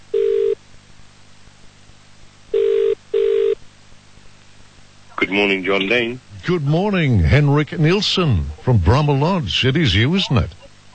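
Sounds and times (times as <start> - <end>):
telephone ringback tone on an outgoing call: 0.1 - 0.6, 2.5 - 3.6
speech: 5.2 - 10.6.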